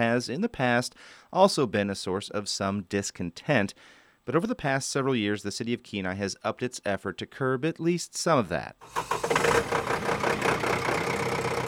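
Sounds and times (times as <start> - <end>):
speech: 0.0 - 10.6
beach-raking tractor engine idling with a faint rhythmic knock: 8.8 - 11.6.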